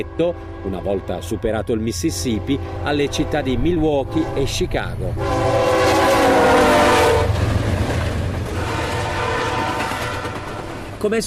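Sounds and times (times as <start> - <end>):
speech: 0.0 - 5.8, 11.0 - 11.2
train horn blaring in McGregor on the Mississippi River: 0.0 - 7.5, 8.5 - 10.9
railcars rumbling and rattling past in McGregor: 0.0 - 11.2.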